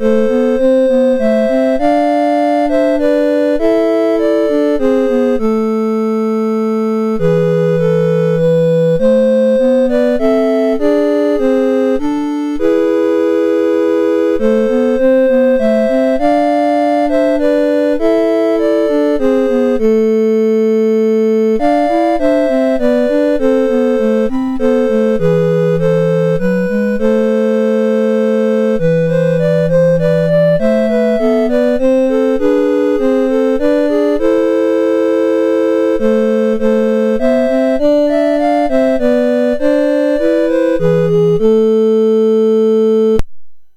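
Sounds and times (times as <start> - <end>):
lullaby melody on a MOS6581R2 sound chip: 0.0 - 43.2.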